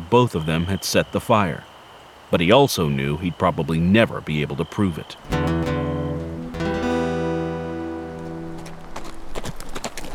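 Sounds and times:
speech: 0.1 - 1.7, 2.3 - 5.7
sustained musical tones: 5.3 - 9.3
horse hooves clopping as riders come slowly into a tiny town: 6.2 - 10.1.

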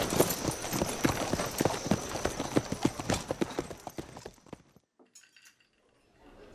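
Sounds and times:
riders' horses' hooves clip-clopping as riders ride away: 0.0 - 4.9.

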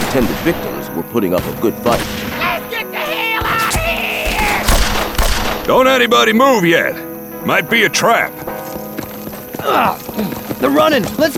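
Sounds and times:
speech: 0.1 - 2.3, 5.7 - 8.5, 9.6 - 11.3
gunfire in a nighttime ambush among trees: 3.6 - 6.0.

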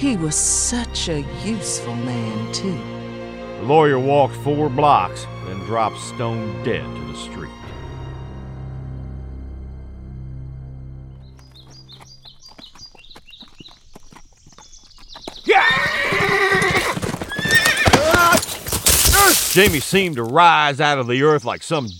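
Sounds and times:
speech: 0.0 - 3.0, 3.6 - 7.7, 19.6 - 21.9
horse hooves clopping: 11.3 - 20.3
horse neighing: 15.5 - 19.3.

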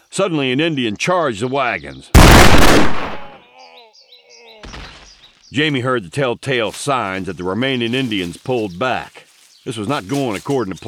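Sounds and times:
speech: 0.2 - 3.2, 5.5 - 10.8
rifle shot fired at a charging warrior: 2.2 - 3.3.

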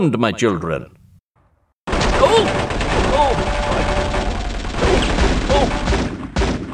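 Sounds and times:
rapid submachine gun fire with handgun loads: 1.9 - 6.7
people shouting: 2.1 - 6.1.

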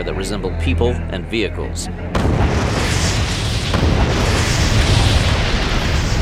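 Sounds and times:
speech: 0.0 - 2.6
powerful explosion roaring rumble: 2.2 - 6.2.

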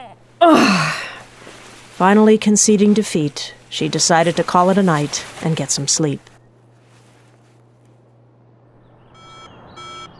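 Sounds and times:
low steady hum: 0.0 - 10.1
speech: 0.4 - 0.9, 2.0 - 6.3
alarm clock beeping: 9.2 - 10.1.

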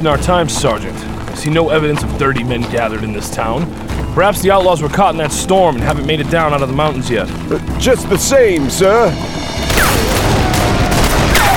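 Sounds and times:
speech: 0.0 - 10.1
volley of gunfire from above raining down on mounted soldiers: 9.6 - 11.5.

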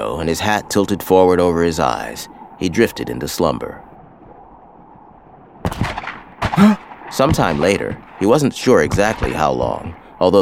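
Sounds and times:
speech: 0.0 - 3.9, 7.2 - 10.4
faint noise: 0.0 - 10.4
gunfire from a gun battle: 5.6 - 10.4.

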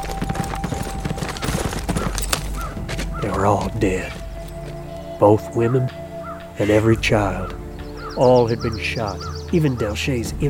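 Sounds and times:
horse galloping: 0.0 - 7.6
speech: 3.4 - 4.2, 5.2 - 6.0, 6.6 - 7.6, 8.2 - 10.4.

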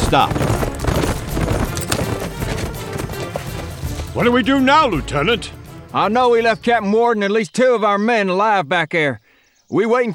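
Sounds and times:
horses of retreating Confederate riders galloping hard: 0.0 - 6.1
speech: 0.1 - 0.4, 4.2 - 10.1.

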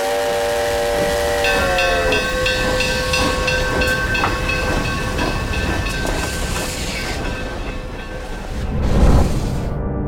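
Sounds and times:
steam locomotive multi-tone whistle: 0.0 - 7.2
steam locomotive steam hissing: 0.0 - 9.7
steam locomotive rumbling: 0.0 - 10.0.

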